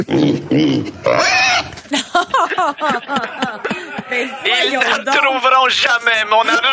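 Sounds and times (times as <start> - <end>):
pig grunting and oinking: 0.0 - 1.8
speech: 0.0 - 6.7
laughter: 1.8 - 6.7.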